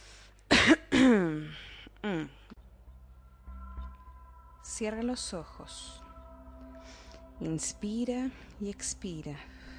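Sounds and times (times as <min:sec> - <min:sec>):
person coughing: 0:00.5 - 0:01.5
speech: 0:04.8 - 0:06.0, 0:07.4 - 0:09.5.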